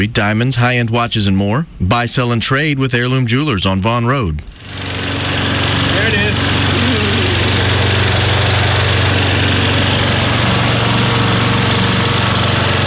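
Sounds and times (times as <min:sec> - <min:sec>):
speech: 0:00.0 - 0:04.9
riding lawnmower engine running with a rough buzzing rattle: 0:04.5 - 0:12.8.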